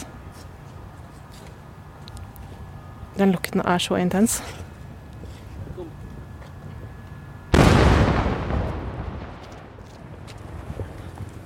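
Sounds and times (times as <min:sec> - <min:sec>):
speech: 0:03.2 - 0:04.7
outgoing Israeli artillery fire boom: 0:07.5 - 0:11.0.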